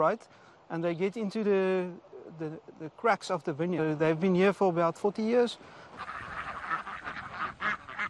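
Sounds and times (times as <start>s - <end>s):
speech: 0.0s - 6.2s
Indian runner ducks quacking in a vineyard: 5.5s - 8.0s.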